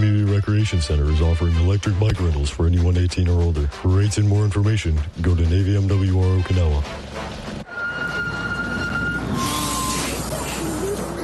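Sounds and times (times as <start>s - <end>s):
speech: 0.4s - 7.4s
street traffic rumbling: 4.8s - 11.2s
large bus brakes squealing while stopping: 7.7s - 11.2s
large bus air brakes releasing air: 9.3s - 10.8s.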